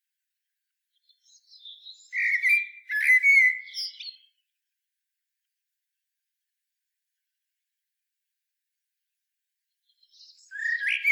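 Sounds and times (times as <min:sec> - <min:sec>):
common blackbird singing: 0:01.0 - 0:04.4, 0:09.9 - 0:11.1.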